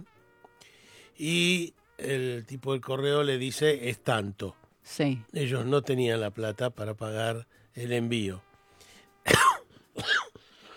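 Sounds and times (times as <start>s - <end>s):
speech: 1.2s - 8.5s
person coughing: 9.3s - 10.7s.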